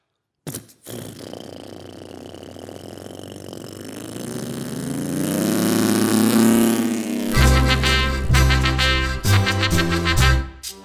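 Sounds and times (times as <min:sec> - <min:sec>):
propeller airplane engine starting and droning: 0:00.8 - 0:10.1
upbeat music with a strong beat: 0:07.3 - 0:10.8.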